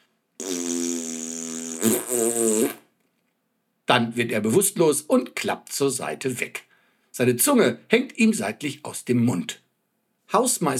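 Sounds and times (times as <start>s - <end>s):
loud buzzy rattling fart: 0.4s - 2.9s
speech: 1.8s - 2.8s, 3.9s - 9.6s, 10.3s - 10.7s.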